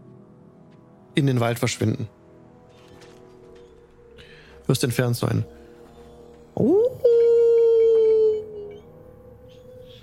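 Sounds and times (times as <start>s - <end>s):
speech: 1.2s - 2.2s, 4.7s - 5.6s, 6.6s - 6.8s
wolf howling: 6.5s - 10.0s.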